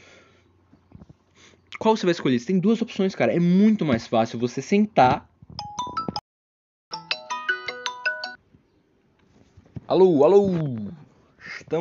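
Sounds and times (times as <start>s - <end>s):
speech: 1.8s - 5.3s, 9.9s - 10.8s, 11.7s - 11.8s
mobile phone ringtone from an incoming call: 5.6s - 6.2s, 6.9s - 8.4s.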